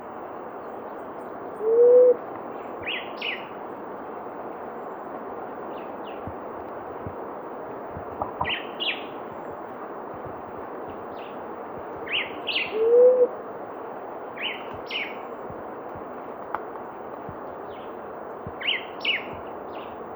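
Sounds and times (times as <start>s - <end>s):
steady background hiss: 0.0s - 20.1s
blue-headed quail-dove low rising hoot: 1.6s - 2.2s, 12.2s - 13.3s.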